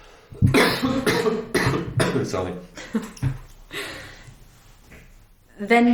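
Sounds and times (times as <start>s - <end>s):
person coughing: 0.4s - 3.4s
speech: 2.2s - 3.4s, 5.6s - 5.9s.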